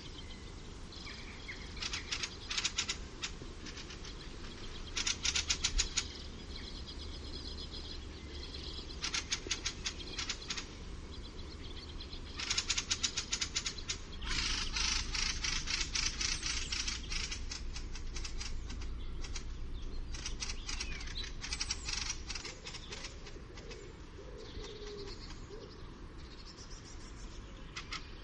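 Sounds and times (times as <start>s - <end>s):
low background rumble: 0.0s - 28.2s
fieldfare chack calls: 1.6s - 6.4s, 8.8s - 10.8s, 12.3s - 19.5s, 20.1s - 25.6s, 27.7s - 28.2s.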